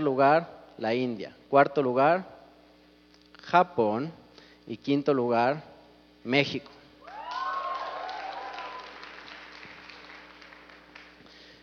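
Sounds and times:
speech: 0.0 - 2.3, 3.5 - 6.8
faint hum: 0.0 - 11.6
small audience clapping scatteredly: 7.0 - 11.3.

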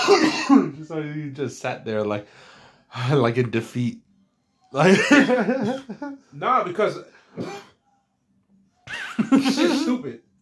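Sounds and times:
person coughing harshly: 0.0 - 0.8, 5.1 - 6.0, 7.4 - 7.7
faint noise: 0.0 - 10.4
speech: 0.1 - 4.0, 4.7 - 7.6, 9.2 - 10.3
laughter: 4.8 - 6.2, 8.9 - 10.0.

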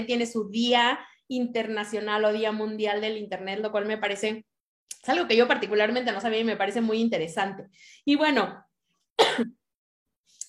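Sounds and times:
speech: 0.0 - 9.6
person coughing: 9.2 - 9.6.

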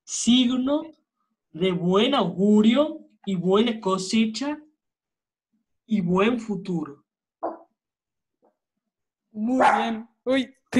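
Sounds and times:
speech: 0.1 - 4.6, 5.9 - 7.5, 9.4 - 10.7
dog barking: 7.4 - 7.7, 9.5 - 10.1.

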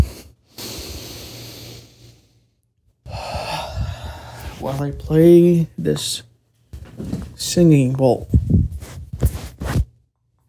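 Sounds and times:
long deep breath drawn in through the nose: 0.0 - 2.4, 3.1 - 4.7
speech: 4.6 - 6.3, 7.4 - 8.4.

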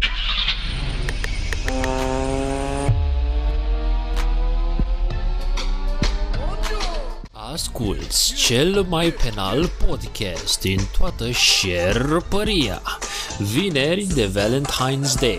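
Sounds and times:
engine starting and revving: 0.0 - 6.3
speech: 7.7 - 15.3.

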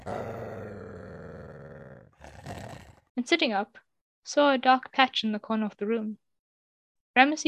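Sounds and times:
animal growling deeply: 0.0 - 3.1
speech: 3.2 - 6.2, 7.2 - 7.4.

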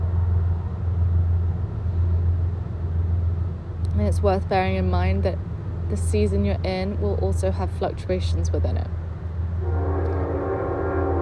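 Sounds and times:
deep rumble of a passing train: 0.0 - 11.1
speech: 4.0 - 9.0
train horn blaring in a long steady droning tone: 9.6 - 11.1.

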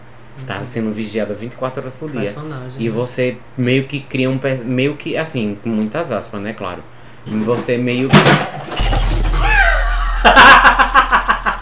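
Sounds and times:
speech: 0.4 - 8.7
objects knocked off a small table crashing: 8.1 - 10.1
laughter: 9.4 - 11.6.

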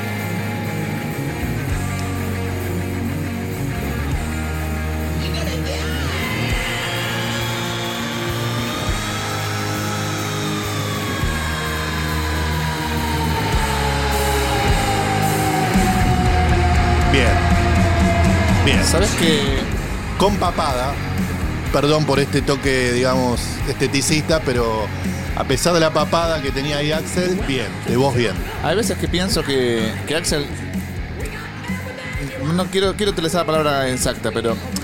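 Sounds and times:
loud full-band rock music: 0.0 - 34.8
rock singer's sustained high-pitched scream: 3.8 - 28.7
speech: 19.0 - 19.6, 20.2 - 21.0, 21.7 - 30.6, 32.5 - 34.8.

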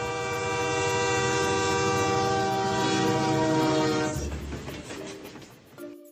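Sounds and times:
train whistle blowing: 0.0 - 4.5
rumbling clatter of a train: 0.0 - 5.8.

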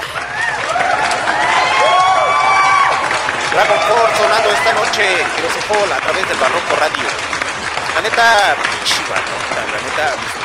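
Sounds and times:
big crowd cheering with whoops and high rising shouts: 0.0 - 6.9
big crowd applause: 0.0 - 10.4
speech: 3.6 - 7.2, 8.0 - 10.4.

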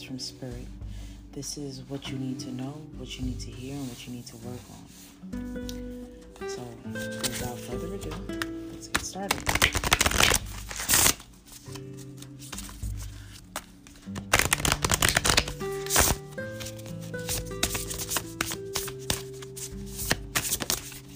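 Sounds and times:
soft sustained tonal background: 0.0 - 9.2
speech: 0.1 - 10.0, 11.7 - 12.3
tarot cards being shuffled for a card reading: 6.6 - 21.1.

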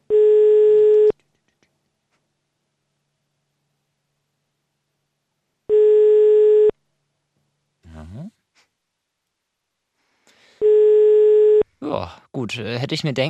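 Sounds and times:
telephone line tone on an unanswered call: 0.1 - 1.2, 5.7 - 6.7, 10.6 - 11.6
speech: 12.4 - 13.2.

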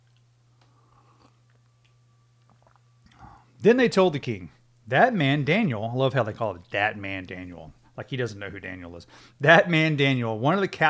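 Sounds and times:
person sipping hot coffee: 0.0 - 3.6
steady low electrical hum: 0.0 - 10.8
speech: 3.6 - 10.8.

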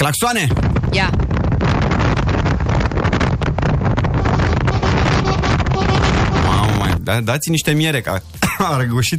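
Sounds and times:
speech: 0.0 - 1.2, 7.1 - 9.1
wind buffeting a phone microphone: 0.0 - 7.2.

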